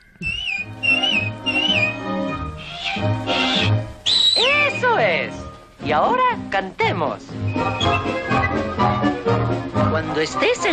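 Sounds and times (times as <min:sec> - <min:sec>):
bright melodic whistling in a song recording: 0:00.0 - 0:05.1, 0:07.4 - 0:08.9
soft orchestral backing: 0:00.6 - 0:10.7
speech: 0:05.9 - 0:08.3, 0:10.0 - 0:10.7.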